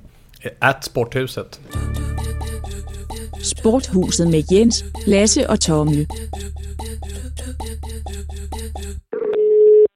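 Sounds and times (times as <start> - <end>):
speech: 0.4 - 1.8, 3.4 - 9.0
telephone ringing tone of an outgoing call: 9.1 - 9.9.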